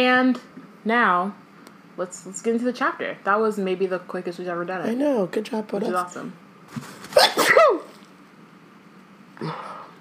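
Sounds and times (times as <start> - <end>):
speech: 0.0 - 1.4, 2.0 - 7.9, 9.4 - 9.7
person sneezing: 7.1 - 7.9.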